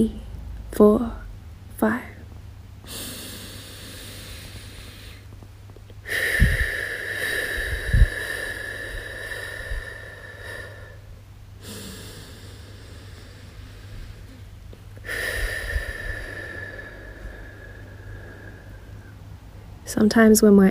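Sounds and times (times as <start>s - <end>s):
speech: 0.0s - 1.2s, 1.8s - 2.1s, 20.0s - 20.6s
slow deliberate breathing in and out: 2.8s - 5.4s, 6.0s - 19.8s.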